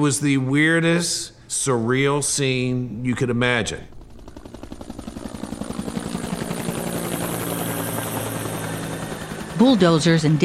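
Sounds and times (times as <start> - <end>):
speech: 0.0 - 4.0, 9.6 - 10.4
NASA helicopter rotor thumping overhead: 3.3 - 10.4.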